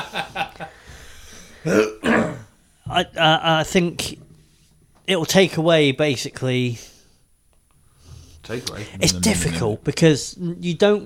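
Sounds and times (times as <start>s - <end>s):
speech: 1.6s - 2.0s, 3.0s - 4.2s, 5.1s - 6.9s, 8.5s - 11.0s
person coughing: 1.6s - 2.5s.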